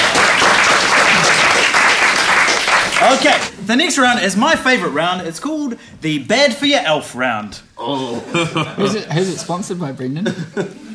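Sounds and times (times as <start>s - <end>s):
audience applause: 0.0s - 3.5s
laughter: 0.8s - 2.2s, 7.9s - 10.9s
speech: 3.1s - 10.9s.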